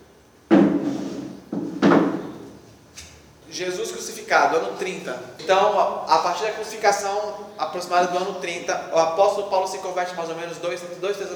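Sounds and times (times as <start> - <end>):
wooden chair set down with a thud: 0.5 - 3.1
speech: 3.6 - 11.3.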